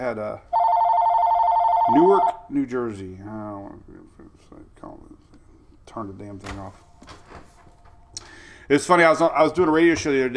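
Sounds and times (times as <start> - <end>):
speech: 0.0 - 0.6, 1.9 - 5.3, 5.9 - 7.1, 8.7 - 10.3
telephone ringing with an electronic two-tone trill: 0.5 - 2.4.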